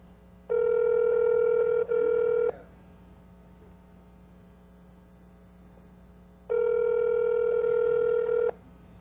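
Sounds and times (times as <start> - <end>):
faint hum: 0.0 - 8.9
ringback tone of an outgoing call over a fixed VoIP line: 0.5 - 2.5, 6.5 - 8.6.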